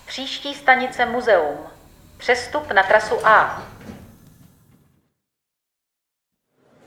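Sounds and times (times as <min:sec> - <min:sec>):
rushing mechanical noise: 0:00.0 - 0:04.8
speech: 0:00.2 - 0:03.8
metro train doors sliding shut: 0:01.9 - 0:05.0, 0:06.6 - 0:06.8.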